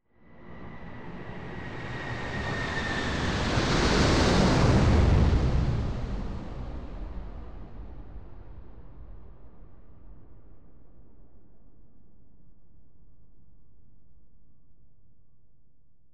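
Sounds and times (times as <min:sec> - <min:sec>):
airplane flying overhead: 0:00.5 - 0:07.3.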